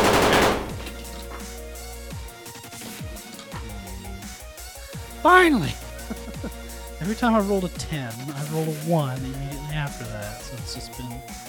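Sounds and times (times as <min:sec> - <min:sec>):
heavy submachine gun full auto fire: 0:00.0 - 0:00.9
speech: 0:05.2 - 0:05.8, 0:07.0 - 0:11.4
laughter: 0:05.3 - 0:07.0.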